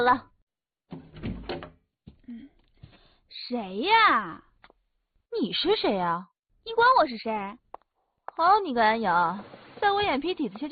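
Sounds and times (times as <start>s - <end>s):
speech: 0.0s - 0.3s, 3.4s - 4.5s, 5.3s - 7.6s, 8.4s - 10.6s
door scraping creak as it swings: 0.9s - 1.8s.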